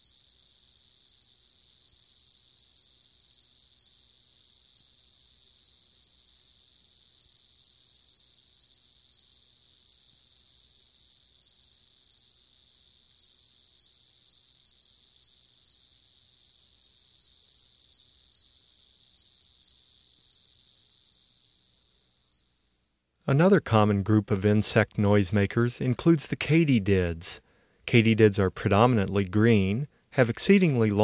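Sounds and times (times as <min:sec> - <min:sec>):
Carolina ground cricket trilling breeding call: 0:00.0 - 0:23.2
speech: 0:23.3 - 0:31.0.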